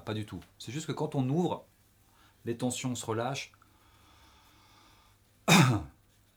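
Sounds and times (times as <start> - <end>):
speech: 0.0 - 1.7, 2.4 - 3.6, 5.5 - 5.9
raspy throat-clearing cough: 5.5 - 5.9.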